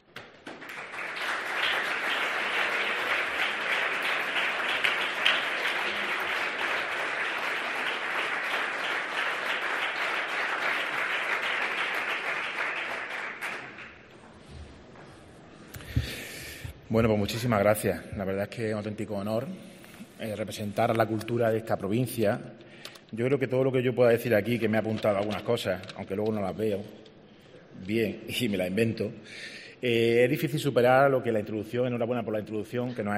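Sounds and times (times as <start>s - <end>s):
crowd applauding at an award presentation in Úbeda Spain: 0.1s - 14.2s
speech: 16.9s - 27.1s, 27.8s - 33.1s.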